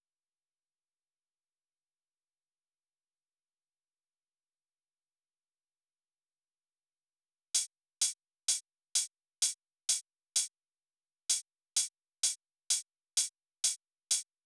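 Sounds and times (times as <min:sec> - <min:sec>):
drum loop with overhead cymbals: 0:07.6 - 0:10.5, 0:11.3 - 0:14.2.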